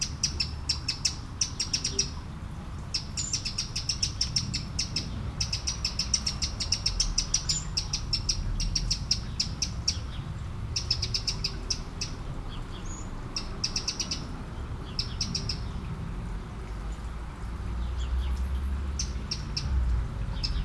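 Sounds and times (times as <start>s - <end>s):
Eurasian blackbird ticking calls by a small river in France: 0.0s - 16.1s, 17.7s - 20.6s
low steady rumble of running water of a small river in France: 4.5s - 20.6s.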